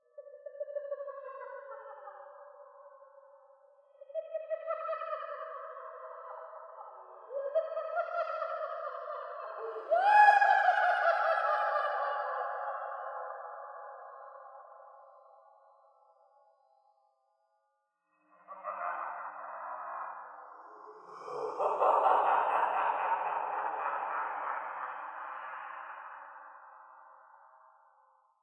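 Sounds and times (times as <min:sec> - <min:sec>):
ghost laughing: 0:04.1 - 0:14.6, 0:18.2 - 0:27.6.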